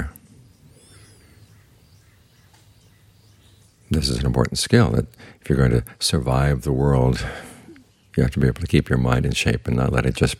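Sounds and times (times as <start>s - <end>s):
faint thin bird calls outdoors: 0.0s - 4.3s, 7.2s - 8.4s
speech: 3.9s - 7.5s, 8.2s - 10.3s.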